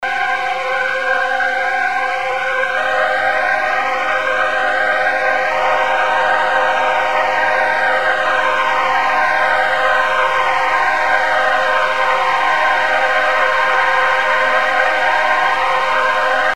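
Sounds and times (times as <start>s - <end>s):
ambience: 0.0s - 16.5s.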